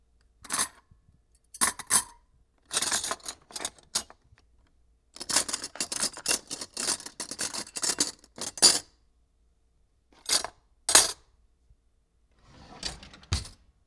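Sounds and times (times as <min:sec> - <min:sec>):
cooking utensils in a drawer: 0:02.7 - 0:04.2, 0:05.2 - 0:08.8, 0:10.2 - 0:11.2, 0:12.4 - 0:13.6.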